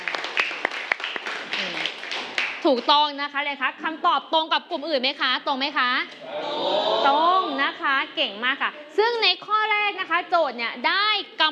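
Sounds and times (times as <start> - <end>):
students clapping in a classroom during a math lesson: 0.0 - 2.9
speech: 2.6 - 11.5.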